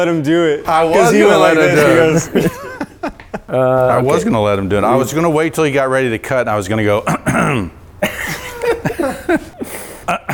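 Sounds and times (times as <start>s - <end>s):
speech: 0.0s - 9.5s
laughter: 0.9s - 4.5s, 8.0s - 9.9s
coughing and throat clearing: 7.0s - 10.3s.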